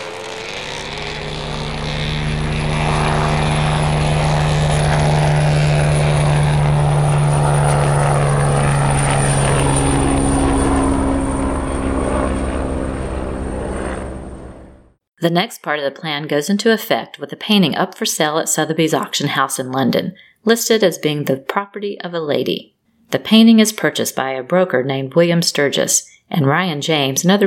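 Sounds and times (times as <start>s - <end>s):
helicopter rotor and engine roar: 0.0s - 15.0s
speech: 15.2s - 27.4s.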